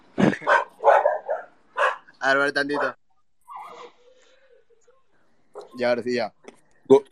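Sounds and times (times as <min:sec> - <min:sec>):
small dogs barking and yipping: 0:00.3 - 0:02.1, 0:02.7 - 0:04.0
speech: 0:02.2 - 0:03.0, 0:05.8 - 0:07.1.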